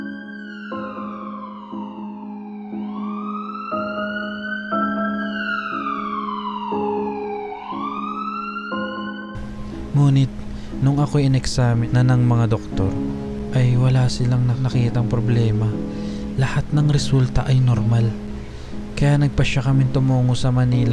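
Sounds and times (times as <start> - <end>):
ambulance siren wailing: 0.0 - 9.7
speech: 10.0 - 18.2, 19.0 - 20.9.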